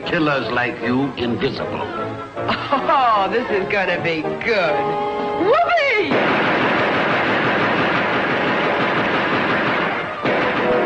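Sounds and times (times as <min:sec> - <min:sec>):
speech: 0:00.0 - 0:07.4
laughter: 0:02.5 - 0:03.2
rapid gunfire barrage: 0:06.1 - 0:10.8.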